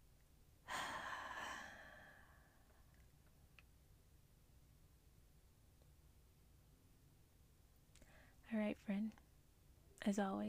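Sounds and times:
deep breath in through nose and out through mouth: 0:00.7 - 0:03.0, 0:08.0 - 0:08.4
speech: 0:08.5 - 0:09.2, 0:10.0 - 0:10.4.

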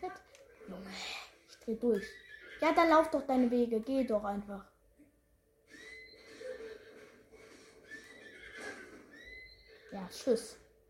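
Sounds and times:
speech: 0:00.9 - 0:04.7, 0:09.9 - 0:10.6
horse neighing in a video game: 0:02.1 - 0:02.7, 0:05.7 - 0:07.1, 0:07.8 - 0:09.9.

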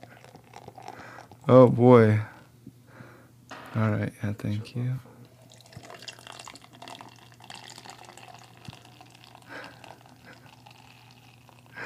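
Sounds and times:
liquid pouring with splashing trickle: 0:00.0 - 0:01.6, 0:05.2 - 0:11.8
low steady hum: 0:00.0 - 0:11.8
speech: 0:01.5 - 0:02.3, 0:03.8 - 0:05.1.

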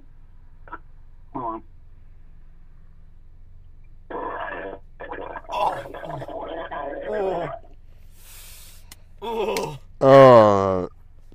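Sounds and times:
loud drawn-out burp: 0:00.7 - 0:01.6, 0:04.1 - 0:07.7, 0:09.6 - 0:10.9
speech: 0:01.4 - 0:01.8
person gargling water: 0:04.2 - 0:07.7, 0:10.0 - 0:10.9.

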